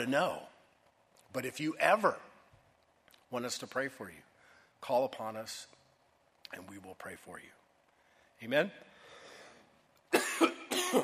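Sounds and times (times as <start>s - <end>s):
speech: 0.0s - 0.5s, 1.3s - 2.3s, 3.3s - 5.8s, 6.5s - 7.6s, 8.4s - 8.9s, 10.1s - 11.0s
adult man coughing: 10.1s - 11.0s.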